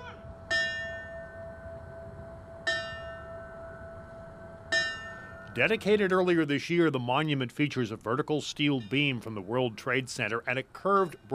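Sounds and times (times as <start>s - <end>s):
low outdoor rumble: 0.0s - 11.3s
fire bell struck at memorial ceremony in Riverfront Park Springfield: 0.5s - 1.6s, 2.6s - 5.7s
speech: 5.6s - 11.3s.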